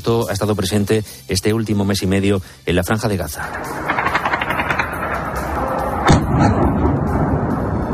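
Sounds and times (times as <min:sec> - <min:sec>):
speech: 0:00.0 - 0:04.0
battle noise in a war zone: 0:03.4 - 0:07.3
gunfire in a war zone: 0:03.5 - 0:07.1
explosion in a war zone with deep rolling rumble: 0:03.5 - 0:07.9.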